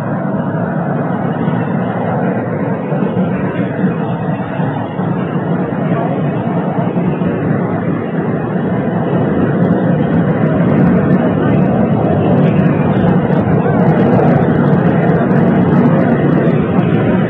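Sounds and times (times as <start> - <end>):
Army helicopter engine and rotors spinning up for takeoff at Andrews Air Force Base: 0.0 - 17.2.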